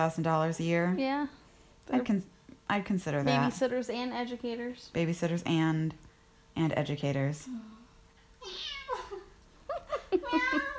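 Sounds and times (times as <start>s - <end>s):
speech: 0.0s - 7.8s
cat meowing: 8.4s - 8.9s.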